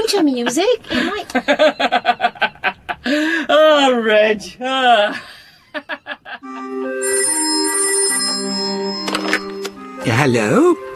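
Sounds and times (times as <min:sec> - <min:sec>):
speech: 0:00.1 - 0:02.5, 0:03.1 - 0:05.4, 0:10.0 - 0:10.8
telephone ringing in quick bursts: 0:06.9 - 0:09.8
sustained bright electronic tone: 0:06.9 - 0:09.9.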